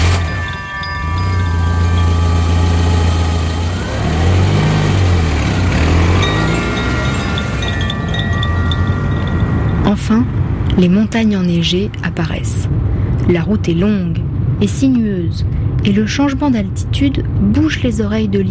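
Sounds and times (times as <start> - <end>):
car engine loaded with skis and a sled revving and pulling away: 0.0 - 10.7
speech: 10.1 - 18.4.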